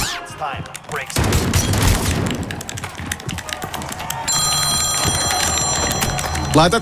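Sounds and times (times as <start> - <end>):
speech: 0.4 - 1.4, 6.6 - 6.8
busy clattering background of sharp clicks and thumps: 0.6 - 6.8
phone ringing with a high electronic tone: 4.3 - 6.8.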